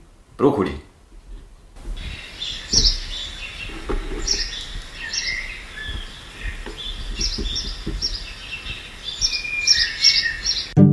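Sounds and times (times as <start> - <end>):
speech: 0.4 - 0.9
soft low rustling: 1.0 - 8.9
birds chirping and singing outdoors: 2.0 - 10.8.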